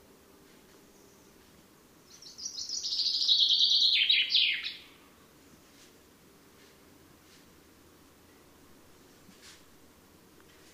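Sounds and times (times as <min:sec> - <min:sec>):
common chaffinch Fringilla coelebs singing: 0:00.9 - 0:05.0.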